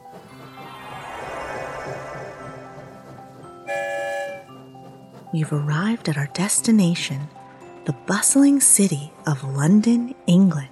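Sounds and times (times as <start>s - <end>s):
train rumbling through a tunnel: 0.0s - 10.6s
train whistle blast: 3.6s - 4.5s
speech: 5.3s - 10.6s.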